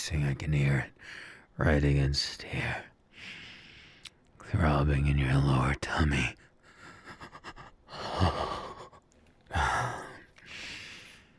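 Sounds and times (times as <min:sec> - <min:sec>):
speech: 0:00.0 - 0:03.4, 0:04.5 - 0:06.4
hot heavy breathing against the microphone: 0:03.1 - 0:04.2, 0:06.6 - 0:11.3.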